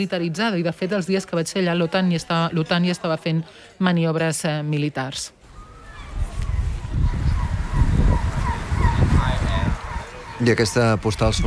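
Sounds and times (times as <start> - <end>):
speech: 0.0 - 5.4, 10.4 - 11.4
wind rumble in an Arctic harbour: 5.4 - 11.4
boat engine noise in an Arctic harbour: 5.5 - 11.4
gull cries in an Arctic harbour: 5.5 - 11.4.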